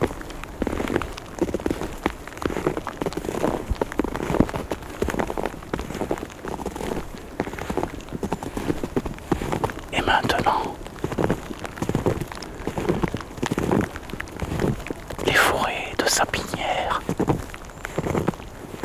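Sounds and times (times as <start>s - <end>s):
light rain pattering on a surface: 0.0s - 18.8s.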